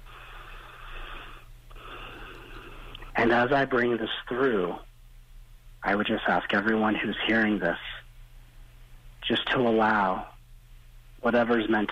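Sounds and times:
person taking a deep breath: 0.0 - 3.1
speech: 3.2 - 4.9, 5.8 - 7.9, 9.3 - 10.3, 11.2 - 11.9.

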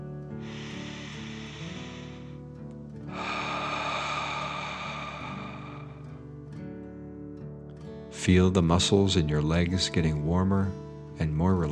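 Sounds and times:
longer louder hissing exhale: 0.4 - 6.2
slow deep breath in during a guided relaxation exercise: 0.4 - 6.6
soft steady musical drone: 0.4 - 6.7
speech: 8.2 - 11.6.

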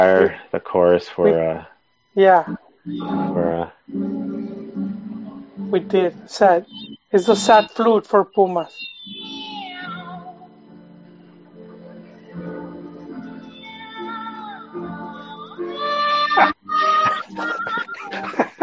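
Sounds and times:
speech: 0.0 - 4.3, 5.7 - 9.3, 16.4 - 16.6
sad chorus of cats meowing with mournful wails: 8.8 - 10.2
laughter: 16.3 - 18.6.

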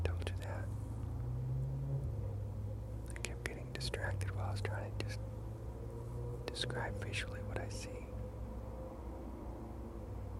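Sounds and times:
cars driving past outdoors: 0.0 - 10.3
speech: 3.8 - 5.3, 6.6 - 8.1.

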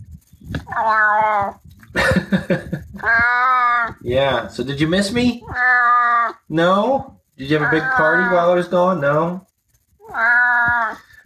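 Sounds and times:
cat meowing in a deep voice: 0.6 - 1.7, 3.0 - 4.0, 5.4 - 6.5, 7.4 - 8.6, 10.0 - 11.1
speech: 0.8 - 9.5
laughter: 2.0 - 3.2.

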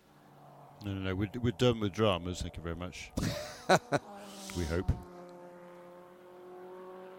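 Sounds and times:
several race car engines droning accelerating out of pit lane: 0.0 - 7.1
speech: 0.8 - 5.1
laughter: 3.2 - 4.8.

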